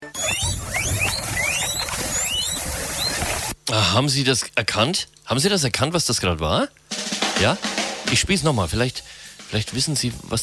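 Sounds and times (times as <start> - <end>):
guinea pig giving thin rising whistled squeaks: 0.0 - 3.6
steady hissing background noise: 0.6 - 10.4
speech: 3.7 - 6.8, 7.4 - 10.4.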